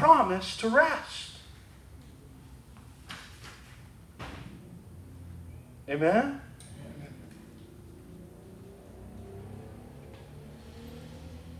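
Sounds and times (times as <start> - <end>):
speech: 0.0 - 1.3, 5.9 - 6.5
motorcycle passing: 4.4 - 11.5.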